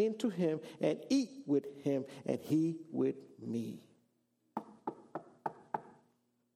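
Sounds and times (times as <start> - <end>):
speech: 0.0 - 3.9
firm knocks on a wooden door: 4.6 - 6.0.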